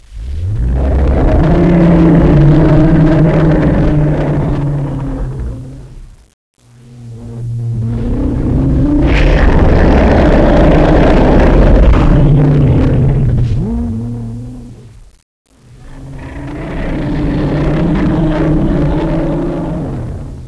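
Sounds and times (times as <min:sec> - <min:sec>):
evil ambience: 0:00.0 - 0:20.4.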